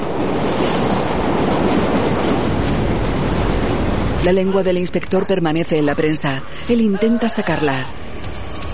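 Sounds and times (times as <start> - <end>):
rail clatter: 0.0 - 6.2
approaching train rumble: 0.0 - 8.7
speech: 4.2 - 8.1.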